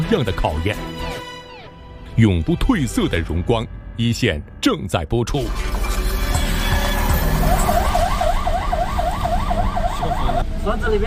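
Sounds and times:
speech: 0.1s - 1.2s, 2.2s - 5.8s, 10.6s - 11.0s
police car siren wailing during a flood evacuation: 6.4s - 10.5s.

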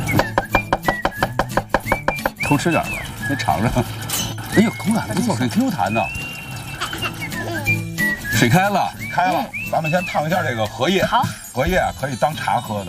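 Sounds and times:
knife mincing ginger on a cutting board: 0.2s - 2.5s
people talking: 2.5s - 3.9s, 4.5s - 6.2s, 6.9s - 12.8s
laughter: 6.5s - 7.8s.

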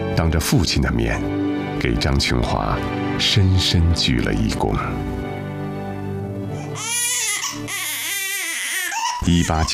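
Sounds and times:
speech: 0.2s - 5.2s, 9.2s - 9.7s
newborn baby crying: 6.4s - 9.7s.

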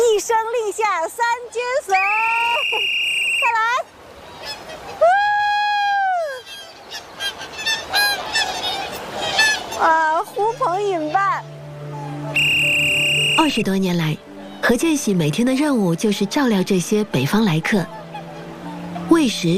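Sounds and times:
speech: 0.2s - 4.0s, 13.4s - 18.0s, 19.1s - 19.5s
flock of swans honking as they gather: 2.6s - 5.0s, 6.4s - 13.6s, 14.2s - 19.5s.

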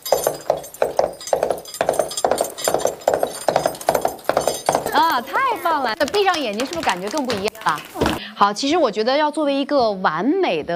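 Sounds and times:
two teachers imitating horse hooves clip-clopping: 0.0s - 8.2s
speech: 5.2s - 10.7s.

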